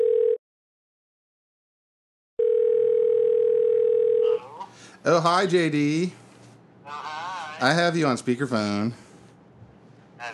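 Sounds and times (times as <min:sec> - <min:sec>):
electronic phone ringback tone: 0:00.0 - 0:00.4, 0:02.4 - 0:04.4
speech: 0:05.0 - 0:06.2, 0:06.9 - 0:09.0.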